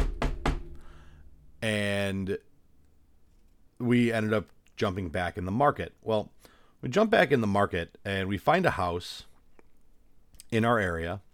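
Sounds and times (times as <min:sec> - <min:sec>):
dull knocks on a wooden surface: 0:00.0 - 0:00.8
speech: 0:01.6 - 0:02.5, 0:03.8 - 0:09.3, 0:10.5 - 0:11.3.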